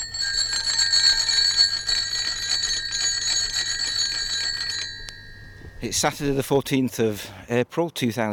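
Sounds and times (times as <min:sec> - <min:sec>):
bicycle bells ringing in a bright metallic trill: 0:00.0 - 0:06.4
speech: 0:05.8 - 0:08.3.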